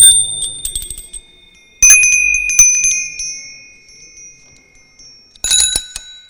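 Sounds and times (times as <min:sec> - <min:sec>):
bicycle bell ringing: 0:00.0 - 0:06.2.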